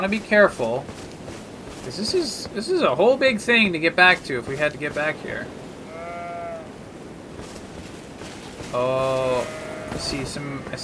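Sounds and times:
speech: 0.0 - 1.0, 1.8 - 5.6, 8.7 - 10.8
outdoor rustle: 0.0 - 10.8
sheep bleating: 5.8 - 6.7, 9.0 - 10.8.

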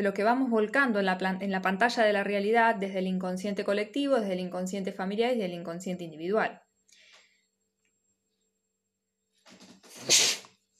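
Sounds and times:
speech: 0.0 - 6.6
person sneezing into an elbow: 9.9 - 10.5.

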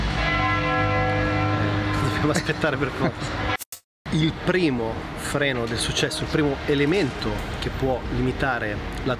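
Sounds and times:
church bells ringing: 0.1 - 3.5
speech: 2.2 - 3.5, 4.1 - 9.1.

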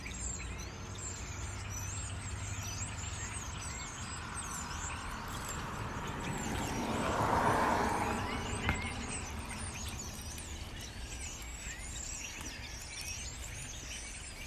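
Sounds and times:
birds chattering in high busy chirps: 0.0 - 14.4
low steady traffic rumble: 0.0 - 14.4
vehicle passing: 0.8 - 11.8.

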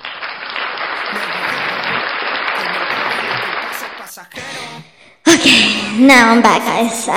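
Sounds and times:
crowd applause: 0.0 - 4.8
laughter: 0.9 - 6.0
speech: 5.4 - 7.1.

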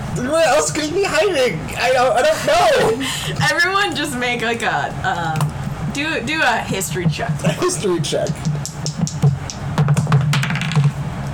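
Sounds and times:
low steady hum: 0.0 - 11.3
speech: 0.2 - 8.5
dice rolling off the tray: 8.2 - 10.9.

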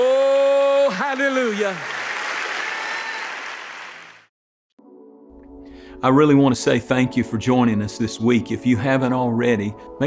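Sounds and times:
audience applause with many hands clapping: 0.7 - 4.3
speech: 1.2 - 2.0, 6.0 - 10.0.

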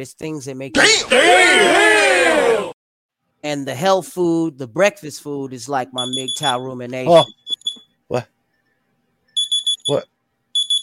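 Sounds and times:
speech: 0.0 - 2.7, 3.4 - 7.4, 8.1 - 8.3, 9.9 - 10.1
electronic alarm beeping in short high-pitched bursts: 6.0 - 7.8, 8.6 - 10.8.

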